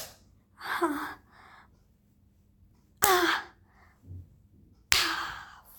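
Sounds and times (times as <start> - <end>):
sharp slaps on skin: 0.0 - 0.2, 4.9 - 5.2.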